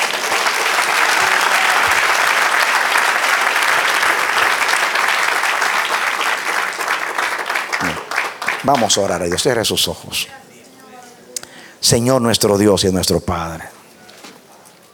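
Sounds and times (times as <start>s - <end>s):
audience applauding with many hands clapping: 0.0s - 10.2s
speech: 8.6s - 10.4s, 11.8s - 13.8s.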